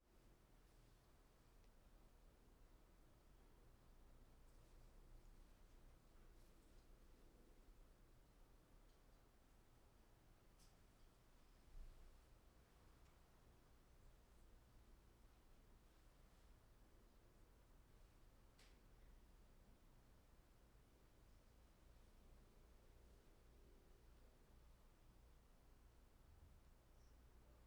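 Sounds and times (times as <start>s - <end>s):
daytime apartment living room ambience: 0.1s - 27.6s.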